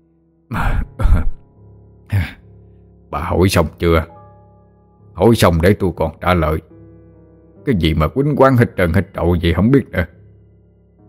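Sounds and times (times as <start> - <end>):
old man coughing and clearing his throat: 0.6 - 1.5
speech: 3.1 - 4.1, 5.2 - 6.7, 7.6 - 10.2.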